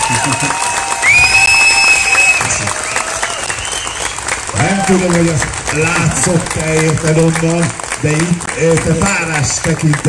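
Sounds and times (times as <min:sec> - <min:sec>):
whistles and cheers from audience: 0:00.0 - 0:04.9
audience applause: 0:00.0 - 0:10.0
speech: 0:00.1 - 0:00.7, 0:04.9 - 0:10.0.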